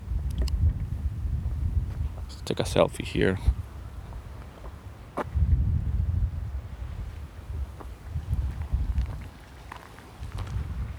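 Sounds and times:
wind buffeting the microphone outdoors: 0:00.0 - 0:10.9
speech: 0:02.5 - 0:03.6.

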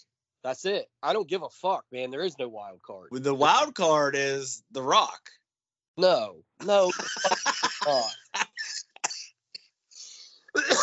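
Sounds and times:
speech: 0:00.4 - 0:05.4, 0:06.0 - 0:08.2
laughter: 0:06.6 - 0:09.0, 0:10.6 - 0:10.8
person coughing in short harsh bursts: 0:07.7 - 0:09.3, 0:10.6 - 0:10.8
gasping breaths: 0:10.0 - 0:10.5.

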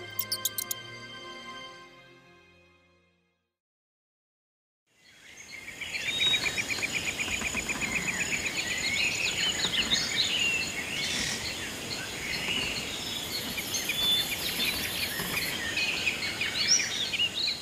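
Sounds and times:
chorus of birds trilling and chirping: 0:00.0 - 0:00.8, 0:05.2 - 0:17.6
insects buzzing: 0:05.9 - 0:17.6.

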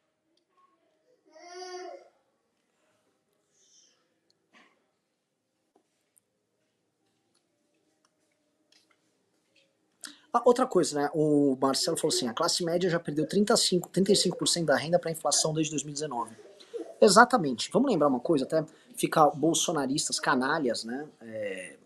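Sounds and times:
young child crying out in a wailing burst: 0:01.3 - 0:02.0
speech: 0:10.3 - 0:21.8.

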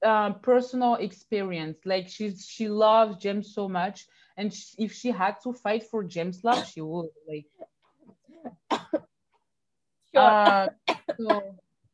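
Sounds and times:
speech: 0:00.0 - 0:07.6, 0:10.1 - 0:11.6
sharp raspy coughing fit: 0:08.4 - 0:09.1, 0:10.4 - 0:11.5.

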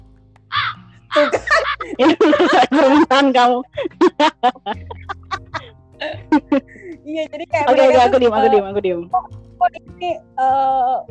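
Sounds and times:
crow cawing: 0:00.5 - 0:00.9
laughter: 0:00.5 - 0:06.9
speech: 0:01.2 - 0:05.0, 0:07.2 - 0:11.0.

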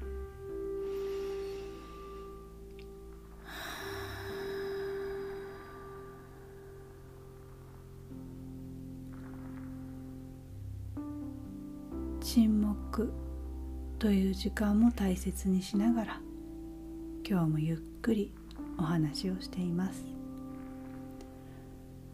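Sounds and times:
quiet steady tonal hum: 0:00.0 - 0:22.1
slow deep breathing: 0:00.5 - 0:11.6, 0:20.2 - 0:22.1
speech: 0:12.4 - 0:13.2, 0:14.0 - 0:16.2, 0:17.3 - 0:20.1.

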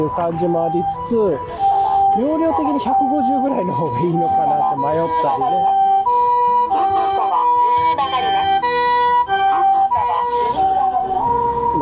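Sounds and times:
speech: 0:00.0 - 0:06.2
low traffic rumble: 0:00.0 - 0:11.8
two-tone ambulance siren wailing: 0:00.0 - 0:11.8.

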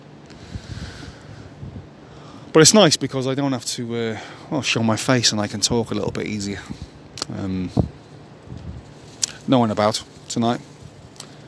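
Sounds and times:
outdoor wind rushing across the microphone in a park: 0:00.4 - 0:02.0, 0:07.7 - 0:10.1
speech: 0:02.6 - 0:08.0, 0:09.5 - 0:10.7.

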